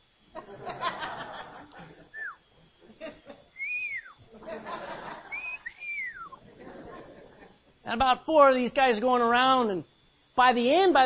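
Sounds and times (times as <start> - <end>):
speech: 0.4 - 1.1, 7.9 - 11.0
soft chuckling and breathy laughter: 0.4 - 7.7
person whistling short sliding notes: 2.1 - 2.4, 3.6 - 4.2, 5.3 - 6.4.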